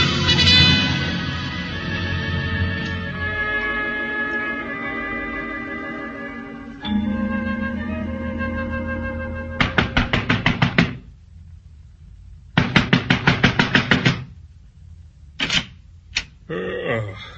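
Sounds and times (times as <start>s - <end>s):
low steady hum: 0.0s - 17.3s
fist hammering on a door: 9.6s - 11.0s, 12.6s - 14.3s.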